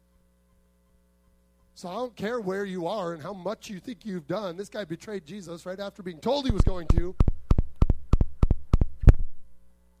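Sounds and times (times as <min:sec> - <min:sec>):
speech: 0:01.8 - 0:07.3
deep bass thumps in a double-beat rhythm: 0:06.4 - 0:09.4.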